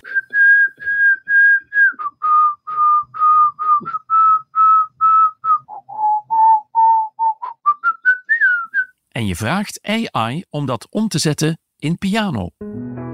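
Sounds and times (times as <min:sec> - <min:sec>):
person whistling a melodic tune: 0:00.0 - 0:09.0
speech: 0:09.2 - 0:12.6.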